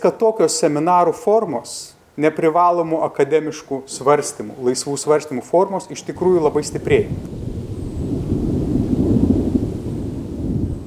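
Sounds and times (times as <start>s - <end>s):
speech: 0.0s - 7.6s
low rolling thunder: 6.1s - 10.8s.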